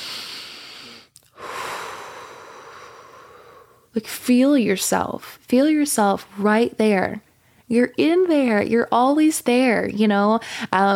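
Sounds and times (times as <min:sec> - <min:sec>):
deep breath: 0:00.0 - 0:03.9
speech: 0:04.0 - 0:10.9.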